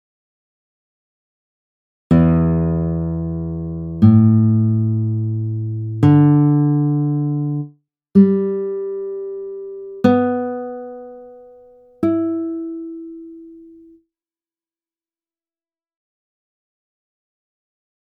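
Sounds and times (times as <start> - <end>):
guitar strings in standard tuning: 2.1 - 13.9.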